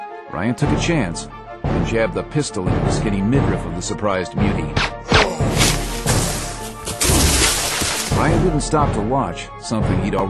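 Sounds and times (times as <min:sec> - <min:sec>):
speech: 0:00.4 - 0:05.0, 0:08.2 - 0:10.2
heavy body crashing to the ground: 0:05.4 - 0:08.3.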